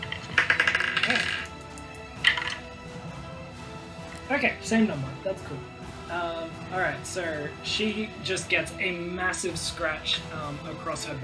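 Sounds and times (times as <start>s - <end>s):
dice clattering across a hard tabletop in a game: 0.0s - 1.6s, 2.2s - 2.6s
speech: 4.3s - 11.2s.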